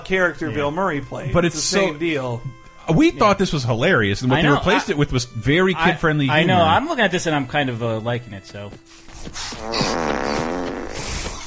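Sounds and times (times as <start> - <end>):
speech: 0.1 - 10.5
giant fart from a man riding a horse: 9.3 - 11.4.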